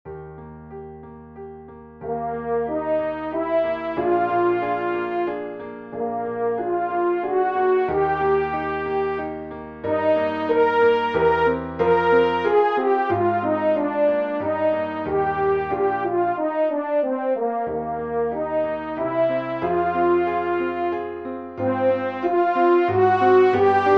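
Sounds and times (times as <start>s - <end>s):
piano: 0.0s - 23.9s
E-flat French horn solo: 2.0s - 23.9s.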